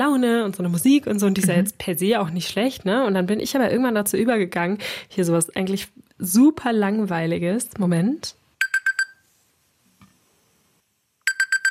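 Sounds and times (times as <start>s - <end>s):
speech: 0.2s - 8.4s
classic alarm clock ringtone beeps from a phone: 8.6s - 9.2s, 11.2s - 11.6s.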